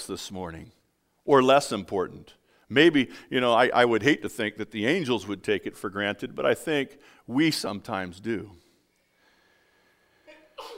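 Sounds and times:
speech: 0.0s - 8.6s
breathy inhale before sneeze: 7.0s - 7.3s, 8.6s - 10.6s
person sneezing: 10.3s - 10.7s.

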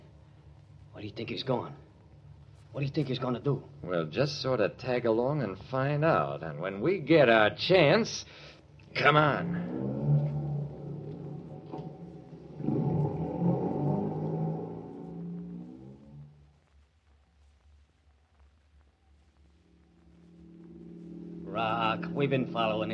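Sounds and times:
speech: 1.0s - 1.9s, 2.7s - 9.9s, 22.2s - 22.9s
car driving slowly with low engine hum: 8.9s - 16.3s, 20.4s - 22.9s.

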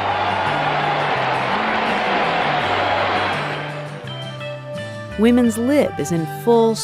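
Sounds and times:
big racetrack crowd roaring during horse race: 0.0s - 4.3s
speech: 5.2s - 6.8s.

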